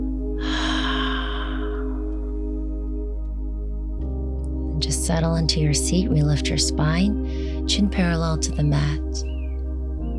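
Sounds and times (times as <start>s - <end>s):
steady low hum: 0.0s - 8.1s
deep breath during a guided breathing exercise: 0.4s - 2.6s
speech: 4.8s - 9.3s.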